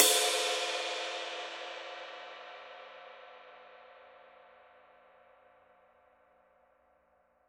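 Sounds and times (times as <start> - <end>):
Paiste Twenty Master Dark ride cymbal: 0.0 - 2.2.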